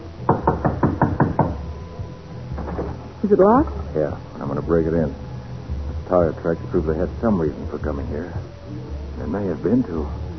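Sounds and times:
firm knocks on a wooden door: 0.3s - 1.7s
speech: 3.3s - 5.2s, 6.1s - 10.2s.

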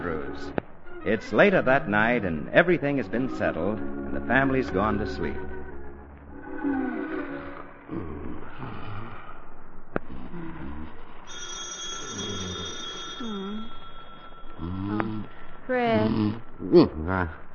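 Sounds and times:
speech: 0.4s - 5.5s, 6.6s - 7.2s, 15.7s - 17.4s
telephone ringing with electric bell: 11.3s - 14.6s.

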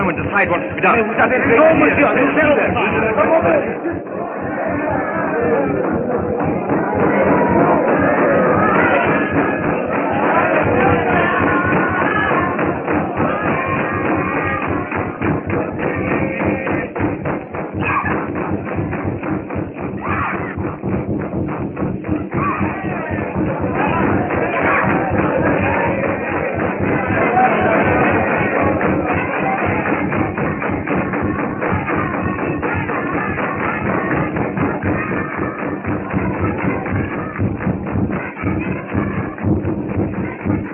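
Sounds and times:
crowd of villagers calling out: 0.0s - 40.7s
villagers stamping and thumping in a ritual dance: 0.0s - 40.7s
speech: 0.2s - 8.2s.

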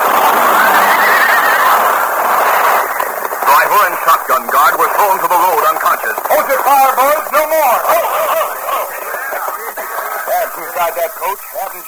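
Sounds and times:
laughter: 0.0s - 11.8s
wounded lead horse whinnying shrilly: 0.6s - 2.0s
speech: 3.7s - 9.1s, 10.6s - 11.8s.

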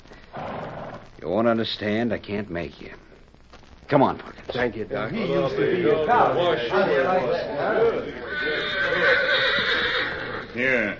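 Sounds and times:
speech: 1.2s - 3.1s, 3.9s - 9.6s, 10.6s - 10.9s
busy background: 2.4s - 10.9s
horse whinnying: 8.2s - 10.9s.

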